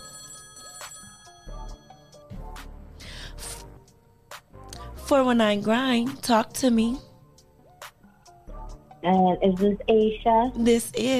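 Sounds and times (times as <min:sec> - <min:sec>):
telephone ringing with an incoming call: 0:00.0 - 0:02.4
speech: 0:05.1 - 0:07.1, 0:09.0 - 0:11.1.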